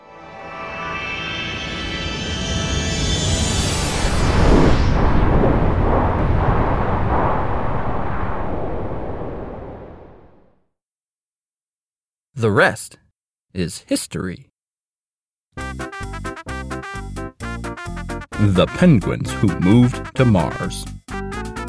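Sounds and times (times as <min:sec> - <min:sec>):
high whine sweeping downward: 0:00.3 - 0:10.5
rocket launch roar: 0:01.8 - 0:10.6
speech: 0:12.4 - 0:14.5, 0:18.4 - 0:21.0.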